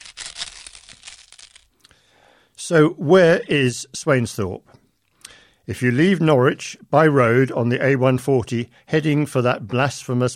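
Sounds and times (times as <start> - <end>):
sandwich wrapping crumpling: 0.0 - 1.8
speech: 2.7 - 4.8, 5.7 - 10.3.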